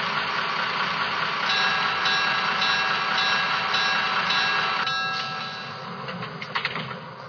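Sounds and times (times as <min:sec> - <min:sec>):
passenger train rumbling into station: 0:00.0 - 0:07.2
sharp clanks of passenger train: 0:01.5 - 0:07.1.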